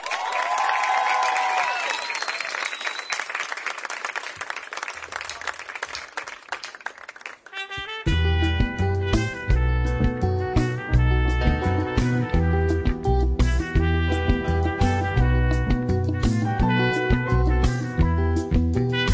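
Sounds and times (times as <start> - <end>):
crowd cheering: 0.0 - 7.8
large crowd applauding: 0.0 - 7.8
whistles from crowd: 0.2 - 3.6
music with a heavy beat: 8.1 - 19.1.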